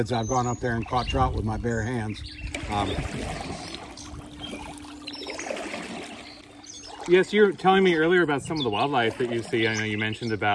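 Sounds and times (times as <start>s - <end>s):
speech: 0.0s - 3.8s, 7.1s - 10.5s
small stream carrying colder water flowing in: 2.4s - 10.5s.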